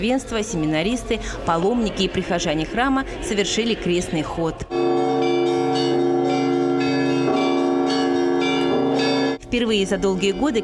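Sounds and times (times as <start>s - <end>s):
speech: 0.0s - 5.1s, 9.5s - 10.6s
church bells pealing: 4.6s - 10.6s.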